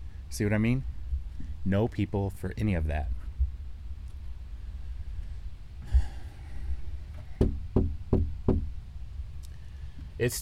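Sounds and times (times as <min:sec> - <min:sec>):
speech: 0:00.3 - 0:00.9, 0:01.6 - 0:03.2, 0:10.2 - 0:10.4
soft breath: 0:04.5 - 0:07.4, 0:09.4 - 0:10.2
firm knocks on a door or window of a house: 0:07.3 - 0:08.7.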